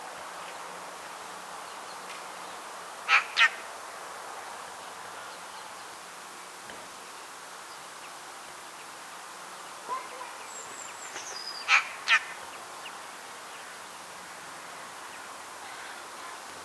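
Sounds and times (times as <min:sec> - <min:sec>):
background hiss: 0:00.0 - 0:16.6
Eurasian magpie Pica pica giving harsh rasping notes: 0:03.1 - 0:03.6, 0:11.7 - 0:12.4.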